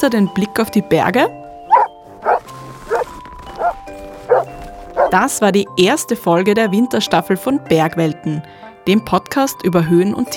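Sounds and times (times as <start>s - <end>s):
speech: 0.0s - 1.4s, 5.1s - 10.3s
dog barking short and sharp: 1.7s - 5.2s.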